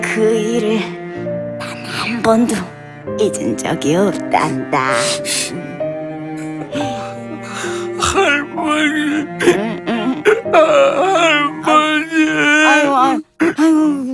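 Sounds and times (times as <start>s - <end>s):
speech: 0.0s - 1.3s, 2.1s - 5.7s, 8.7s - 9.7s, 10.5s - 14.1s
child crying and sobbing: 5.2s - 14.1s.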